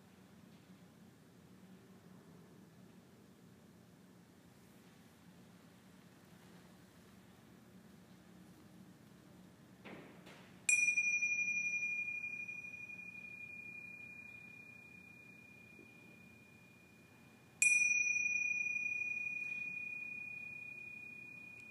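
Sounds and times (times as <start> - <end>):
meditation chime ringing at the end of a session: 10.7 - 21.6.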